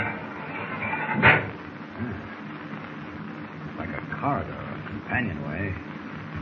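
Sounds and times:
heavy steel door of a control compartment hauled open: 0:00.0 - 0:01.5
steady mechanical rumble: 0:00.0 - 0:06.3
speech: 0:04.2 - 0:05.9.

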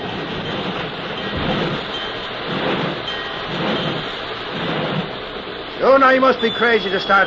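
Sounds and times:
steady hiss: 0:00.0 - 0:07.2
train rumbling slowly while backing up and stopping: 0:00.0 - 0:07.2
speech: 0:05.8 - 0:07.2.

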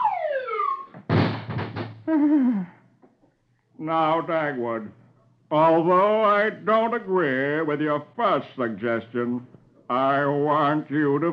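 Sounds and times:
comic descending whistle-like tone: 0:00.0 - 0:01.0
loud crashing thud: 0:01.0 - 0:02.1
speech: 0:02.1 - 0:02.8, 0:03.8 - 0:11.3.

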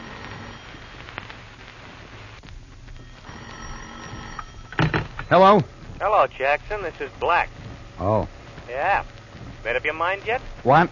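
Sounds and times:
steady hissing noise: 0:00.0 - 0:10.9
old-style telephone bell ringing in an office: 0:03.0 - 0:05.4
speech: 0:05.3 - 0:10.9.

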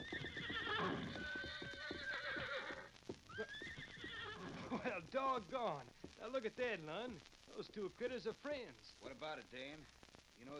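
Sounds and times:
horse whinnying: 0:00.0 - 0:04.8
horse hoofbeats clip-clopping: 0:00.0 - 0:08.7
speech: 0:04.8 - 0:10.5.

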